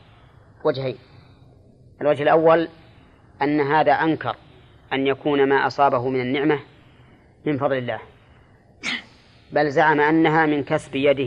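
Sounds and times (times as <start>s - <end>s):
speech: 0.6s - 1.2s, 2.0s - 2.8s, 3.4s - 6.7s, 7.4s - 8.1s, 9.5s - 11.2s
sneeze: 8.8s - 9.2s.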